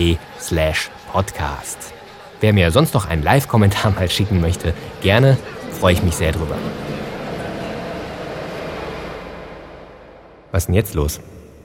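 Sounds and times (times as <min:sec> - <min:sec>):
speech: 0:00.0 - 0:07.0, 0:10.5 - 0:11.4
laughter: 0:03.3 - 0:10.2
subway train rumbling: 0:04.4 - 0:10.6.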